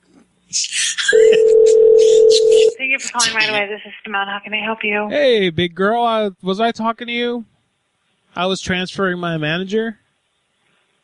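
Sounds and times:
speech: 0.5s - 0.8s, 2.9s - 7.5s, 8.4s - 10.0s
loud steady telephone tone: 1.1s - 2.8s.

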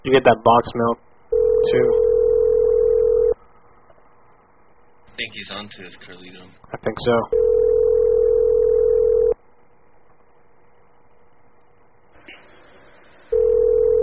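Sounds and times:
speech: 0.1s - 2.1s, 5.2s - 7.6s
telephone ringback tone through the line: 1.3s - 3.4s, 7.3s - 9.4s, 13.3s - 14.0s.

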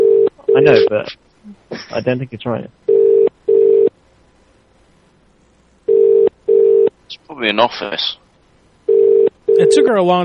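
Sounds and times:
telephone ringback tone on a call line: 0.0s - 0.9s, 2.9s - 3.9s, 5.9s - 6.9s, 8.9s - 9.9s
speech: 0.6s - 2.8s, 7.2s - 8.2s, 9.6s - 10.2s.

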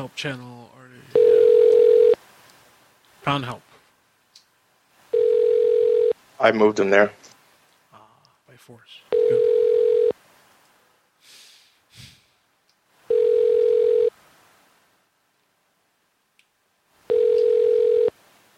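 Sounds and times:
speech: 0.0s - 0.6s, 3.2s - 3.7s, 6.4s - 7.3s, 8.7s - 9.0s
telephone ringing with electronic buzz: 1.1s - 2.2s, 5.1s - 6.2s, 9.1s - 10.1s, 13.1s - 14.1s, 17.1s - 18.1s.

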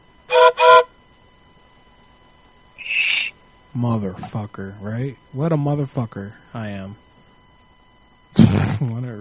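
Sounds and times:
thinner high-pitched sustained tone: 0.3s - 0.9s
train whistle blown by a person over the telephone: 0.3s - 0.9s
speech: 3.8s - 7.0s, 8.3s - 9.1s.

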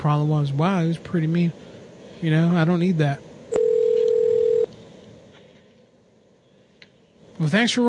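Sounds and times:
speech: 0.0s - 3.6s, 7.4s - 7.8s
hiss: 0.0s - 7.8s
telephone dial tone after caller hangs up: 3.5s - 4.7s.

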